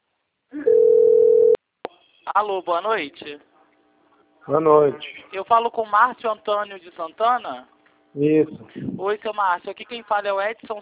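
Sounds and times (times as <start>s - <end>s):
mid-pitched ringback tone of an outgoing phone call: 0.6s - 1.6s
speech: 2.4s - 3.5s, 4.4s - 10.8s.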